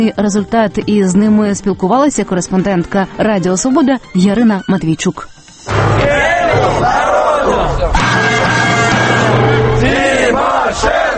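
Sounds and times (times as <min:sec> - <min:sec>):
speech: 0:00.0 - 0:08.4
crowd of protesters chanting a slogan in unison: 0:05.7 - 0:11.1.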